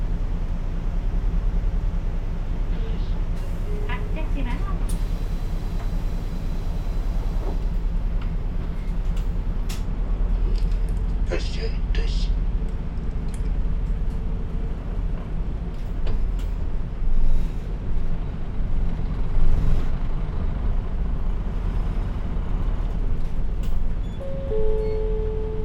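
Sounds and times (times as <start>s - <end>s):
bus engine idling at a stop: 0.0s - 25.6s
faint tonal chime: 24.2s - 25.6s.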